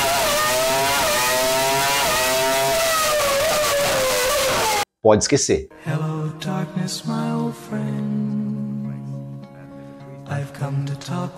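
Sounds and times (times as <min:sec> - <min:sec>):
V10 Formula 1 racing engine revving at very high revs: 0:00.0 - 0:04.8
speech: 0:05.0 - 0:08.4, 0:10.3 - 0:11.3.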